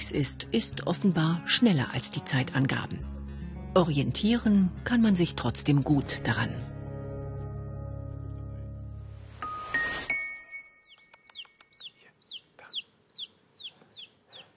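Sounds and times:
speech: 0.1s - 6.7s
male chick of an egg-laying breed peeping: 10.9s - 14.5s.

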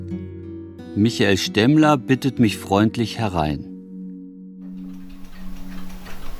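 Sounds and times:
speech: 1.0s - 3.7s
more than 120 old pendulum clocks ticking on house walls: 4.7s - 6.3s.

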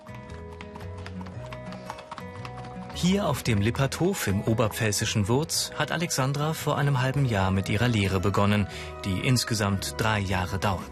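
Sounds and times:
horse hooves clip-clopping on a horse farm in Wurz, Upper Palatinate, Germany: 0.0s - 8.4s
speech: 3.0s - 10.9s.

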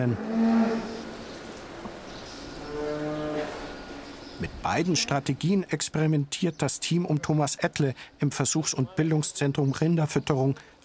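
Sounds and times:
speech: 0.0s - 0.3s, 4.4s - 10.7s
cow mooing: 0.0s - 1.2s, 2.6s - 3.8s.

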